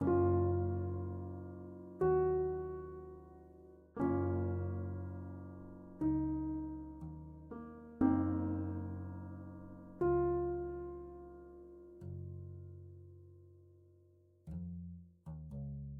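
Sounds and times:
contemplative fantasy pause menu game music: 0:00.0 - 0:12.0.

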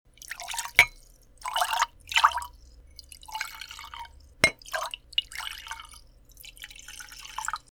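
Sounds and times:
water sounds: 0:00.1 - 0:07.7.

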